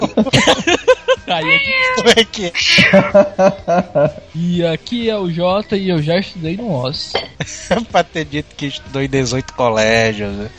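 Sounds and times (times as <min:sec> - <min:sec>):
laughter: 0:00.0 - 0:04.4, 0:07.4 - 0:08.2
speech: 0:00.2 - 0:00.8, 0:01.4 - 0:10.5
person imitating a cat meowing: 0:01.4 - 0:03.2.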